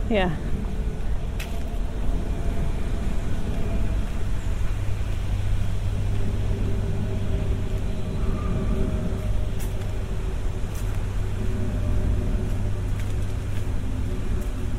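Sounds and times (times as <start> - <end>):
faint outdoor noise beside the River Lea: 0.0 - 14.7
low engine drone of a plane passing overhead beside the River Lea: 0.0 - 14.7
speech: 0.1 - 0.5.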